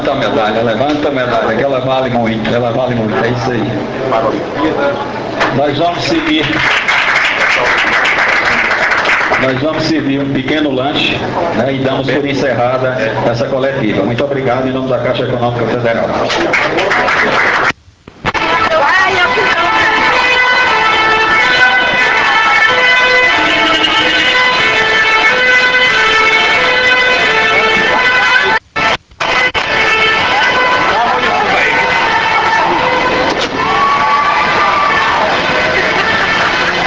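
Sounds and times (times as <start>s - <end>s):
speech: 0.0s - 6.9s, 9.4s - 17.7s
busy crowd background: 0.0s - 36.8s
departing fire truck horn blaring: 18.4s - 33.5s.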